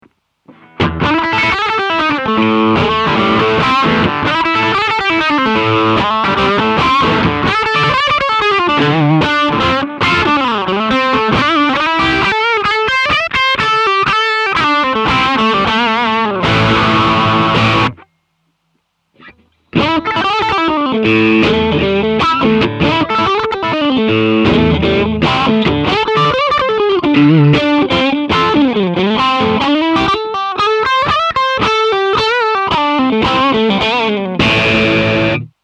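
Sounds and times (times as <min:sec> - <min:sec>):
overdriven guitar through drive pedal: 0:00.0 - 0:18.3, 0:19.0 - 0:35.6.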